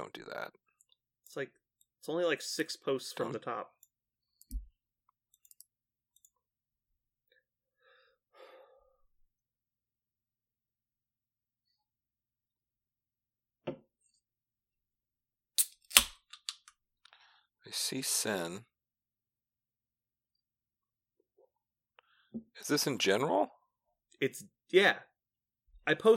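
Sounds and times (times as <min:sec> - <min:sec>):
speech: 0:00.0 - 0:00.6, 0:01.3 - 0:03.8, 0:17.7 - 0:18.7, 0:22.6 - 0:23.6, 0:24.2 - 0:25.1, 0:25.9 - 0:26.1
computer mouse clicking: 0:05.4 - 0:06.3.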